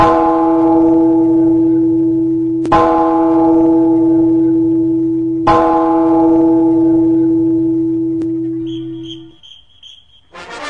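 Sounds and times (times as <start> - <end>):
chapel bell tolling: 0.0 - 9.4.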